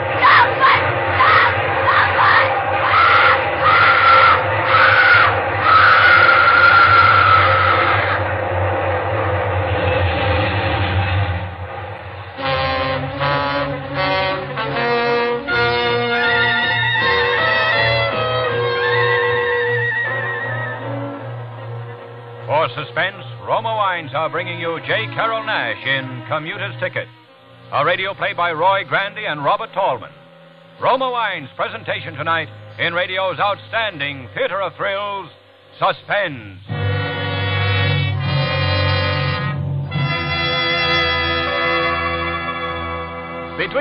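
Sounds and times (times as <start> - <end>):
rhythmic clatter of train wheels: 0.0 - 14.8
passing train horn blaring: 0.0 - 35.8, 36.6 - 43.7
speech: 24.4 - 27.1, 27.7 - 30.2, 30.8 - 36.7, 43.6 - 43.7.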